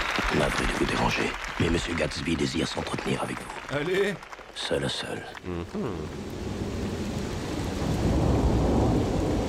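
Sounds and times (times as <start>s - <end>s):
steady rain: 0.1s - 9.4s
speech: 0.4s - 6.7s
deep sustained rumble of thunder: 6.4s - 9.4s.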